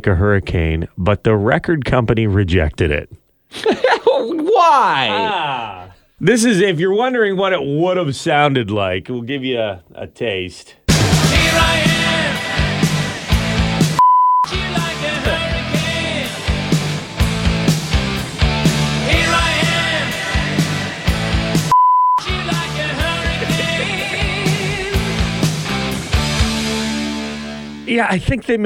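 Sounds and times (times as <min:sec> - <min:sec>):
speech: 0:00.0 - 0:10.8, 0:27.9 - 0:28.6
laughter: 0:03.5 - 0:05.8, 0:22.8 - 0:25.1
loud rock song with band and vocals: 0:10.9 - 0:27.6
steady high-pitched censor bleep: 0:14.0 - 0:14.5, 0:21.7 - 0:22.3.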